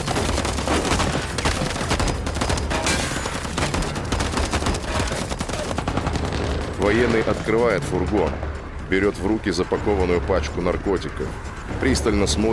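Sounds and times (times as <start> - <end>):
heavy gunfire as soldiers open fire on a van in a film scene: 0.0 - 7.6
speech: 6.9 - 12.5.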